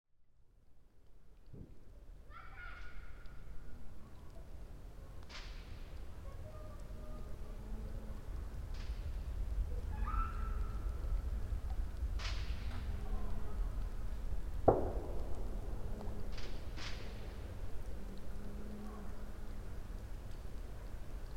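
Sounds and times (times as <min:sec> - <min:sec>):
campfire crackling: 0:00.4 - 0:21.3
raindrops: 0:00.4 - 0:21.3
child: 0:01.9 - 0:05.3, 0:06.1 - 0:08.4, 0:09.6 - 0:12.0
fireworks: 0:08.4 - 0:17.7.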